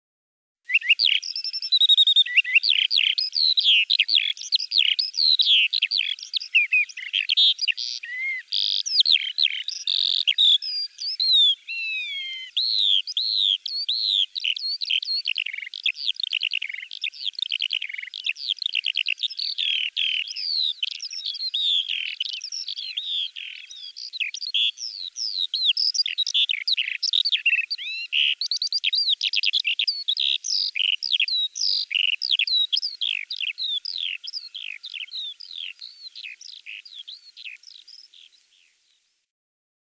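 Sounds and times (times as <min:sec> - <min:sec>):
skylark singing: 0:00.7 - 0:38.9.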